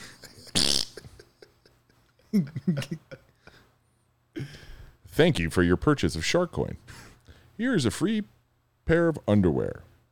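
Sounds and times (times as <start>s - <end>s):
voice imitating a fart: 0.6s - 1.0s
speech: 2.3s - 3.2s, 5.2s - 7.0s, 7.6s - 9.9s.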